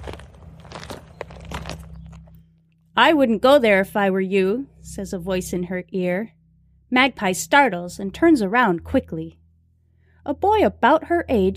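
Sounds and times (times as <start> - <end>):
crunching footsteps on a gritty surface: 0.0 - 2.4
low steady hum: 0.0 - 11.5
speech: 3.0 - 9.4, 10.2 - 11.5.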